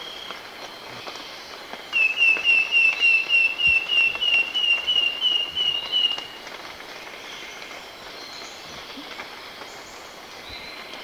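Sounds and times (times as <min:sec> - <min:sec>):
background hiss: 0:00.0 - 0:11.0
wing-banded wren giving whistled notes in Ecuador: 0:02.0 - 0:06.4.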